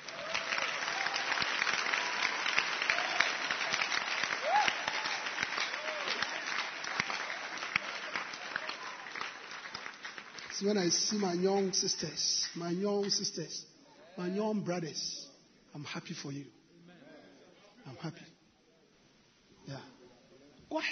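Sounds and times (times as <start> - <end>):
church congregation clapping hands during a service: 0.0 - 13.5
speech: 10.6 - 15.2, 15.8 - 16.6, 17.9 - 18.3, 20.7 - 20.9.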